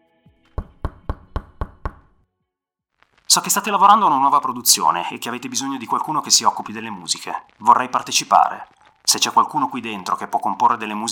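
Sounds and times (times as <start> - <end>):
firm knocks on an office door: 0.5 - 2.2
speech: 3.3 - 11.1.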